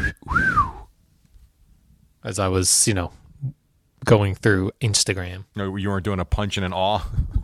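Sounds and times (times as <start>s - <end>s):
admiring wolf whistle: 0.0s - 0.9s
speech: 2.2s - 7.4s.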